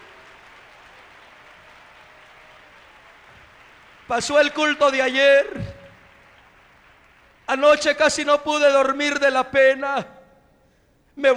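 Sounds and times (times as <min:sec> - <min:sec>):
audience applauding: 0:00.0 - 0:08.7
speech: 0:04.1 - 0:05.7, 0:07.5 - 0:10.2, 0:11.2 - 0:11.3.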